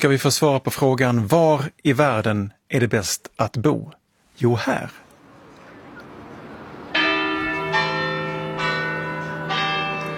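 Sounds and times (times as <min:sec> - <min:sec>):
speech: 0:00.0 - 0:05.0
church bells ringing in a city square: 0:05.3 - 0:10.1.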